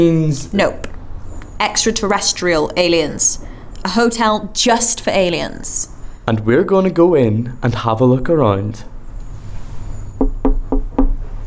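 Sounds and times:
speech: 0.0s - 0.9s, 1.6s - 8.9s
low hum: 0.0s - 11.4s
knocking on a locked hotel door: 10.2s - 11.2s.

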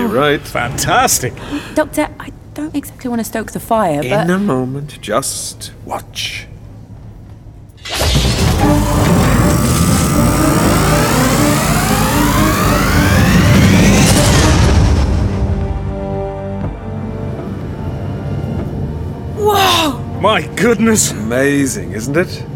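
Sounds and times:
speech: 0.1s - 6.5s, 20.2s - 22.5s
rising whining tones: 7.9s - 18.6s
science-fiction tube vehicle launching and accelerating: 8.4s - 15.9s.

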